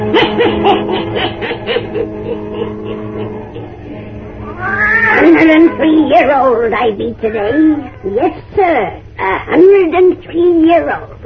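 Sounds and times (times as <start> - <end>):
laughter: 0.1 - 4.1
black cat meowing and yowling: 4.4 - 6.3
speech: 6.6 - 11.2.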